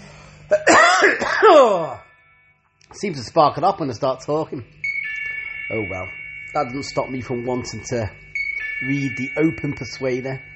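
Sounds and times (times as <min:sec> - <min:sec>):
tickly cough: 0:00.5 - 0:01.9
speech: 0:01.4 - 0:02.0, 0:02.9 - 0:04.8, 0:05.7 - 0:10.5.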